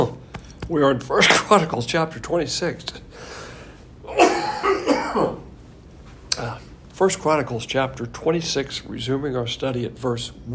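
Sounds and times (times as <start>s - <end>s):
speech: 0.7s - 3.4s, 5.2s - 5.4s, 6.4s - 10.5s
person coughing and clearing throat: 4.1s - 5.5s.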